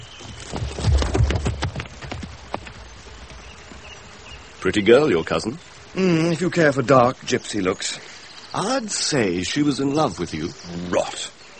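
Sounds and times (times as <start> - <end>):
horse hooves clip-clopping as a rider rides off: 0.0 - 4.5
speech: 4.6 - 11.4.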